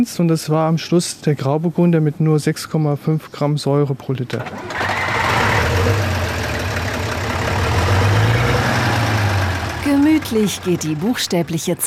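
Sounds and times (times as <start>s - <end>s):
speech: 0.0s - 5.1s, 10.3s - 11.8s
vintage 1950s bus engine running in a World Heritage valley: 4.5s - 11.8s.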